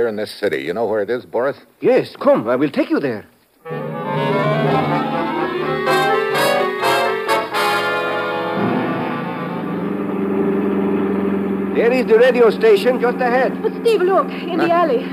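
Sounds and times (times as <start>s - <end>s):
speech: 0.0s - 3.8s, 11.8s - 15.1s
brief rushing bursts: 3.6s - 15.1s
car engine revving while driving: 3.6s - 15.1s.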